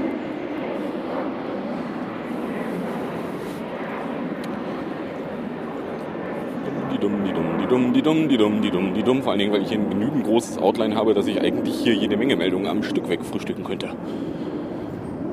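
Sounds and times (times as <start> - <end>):
airplane roaring overhead: 0.0 - 15.3
speech: 7.0 - 14.5.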